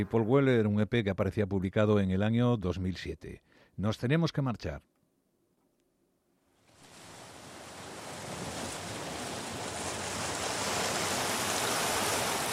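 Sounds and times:
speech: 0.0 - 4.9
ocean waves washing ashore: 6.6 - 12.5.

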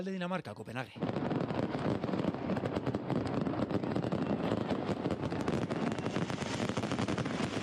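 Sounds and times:
speech: 0.0 - 1.9
barrage of fireworks crackling and popping over a city: 0.7 - 7.6.

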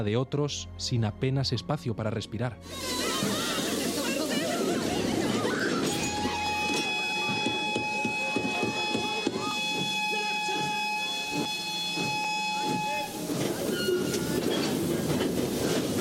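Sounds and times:
speech: 0.0 - 3.4
laughter: 2.7 - 7.1
freight train rolling on rails: 2.7 - 15.9.

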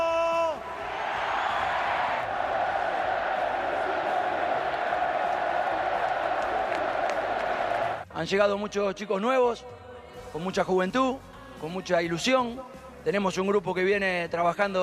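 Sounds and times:
large stadium crowd chanting a coach's name: 0.6 - 8.0
speech: 8.2 - 14.8.

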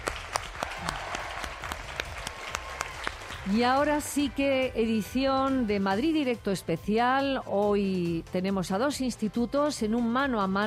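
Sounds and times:
audience applauding in a large room: 0.0 - 3.8
speech: 3.5 - 10.6.

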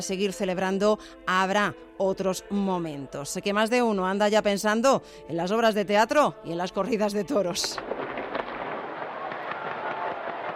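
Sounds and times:
speech: 0.0 - 8.0
fireworks crackling and popping: 7.7 - 10.5.

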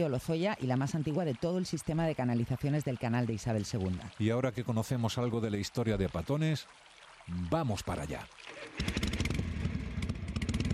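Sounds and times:
speech: 0.0 - 9.1
motorcycle engine revving before setting off by road: 8.8 - 10.7.

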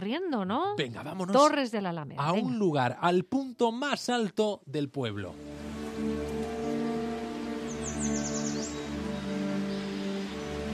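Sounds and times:
speech: 0.1 - 5.6
high bird chirps: 5.4 - 10.7
wind rustling tree leaves: 5.4 - 10.7.

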